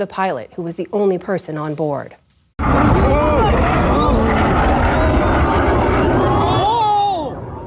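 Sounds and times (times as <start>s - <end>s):
speech: 0.0s - 4.2s
air show crowd voices shouting: 2.6s - 7.6s
fighter jet roar at an air show: 2.6s - 7.6s.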